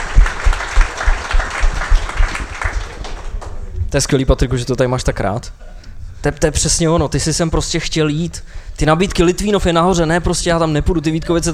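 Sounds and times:
crowd applauding: 0.0 - 3.7
speech: 3.9 - 11.5.

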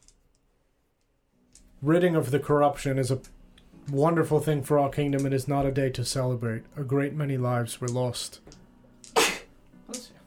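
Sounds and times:
speech: 1.8 - 8.6
person sneezing: 9.2 - 9.5.

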